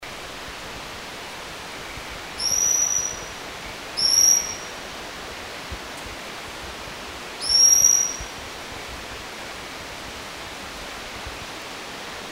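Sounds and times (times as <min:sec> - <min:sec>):
steady hiss: 0:00.0 - 0:12.3
Bornean whistling thrush thin very high whistles: 0:02.4 - 0:03.4, 0:04.0 - 0:04.8, 0:07.4 - 0:08.4.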